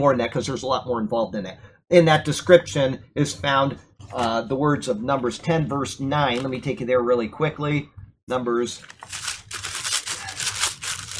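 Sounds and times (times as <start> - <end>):
speech: 0.0 - 9.3
papers shuffled and rustled by hand: 8.8 - 11.1.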